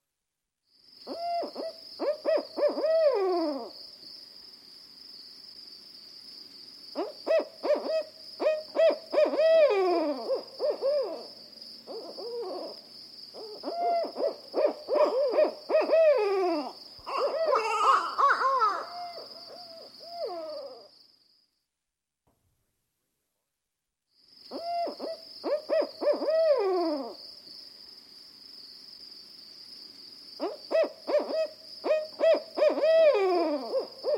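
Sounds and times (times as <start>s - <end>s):
barred owl hooting: 1.1s - 3.7s, 7.0s - 11.3s, 11.9s - 12.7s, 13.4s - 20.9s, 24.5s - 27.2s, 30.4s - 34.1s.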